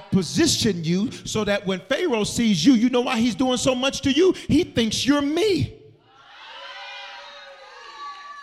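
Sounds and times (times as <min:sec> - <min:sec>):
large audience crowd shouting and cheering: 0:00.0 - 0:00.9, 0:06.0 - 0:08.4
speech: 0:00.2 - 0:05.8.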